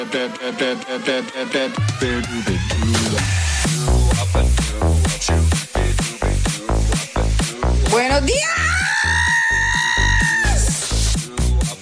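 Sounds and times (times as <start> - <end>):
speech: 0.0 - 3.4
thumping rhythmic music beat: 0.0 - 11.7
woman screaming: 8.3 - 10.8.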